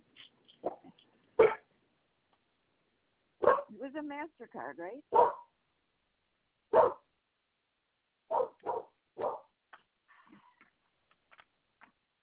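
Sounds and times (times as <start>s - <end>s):
dog barking: 0.6s - 1.7s, 3.4s - 3.7s, 5.1s - 5.6s, 6.7s - 7.1s, 8.3s - 9.5s
speech: 3.8s - 5.5s.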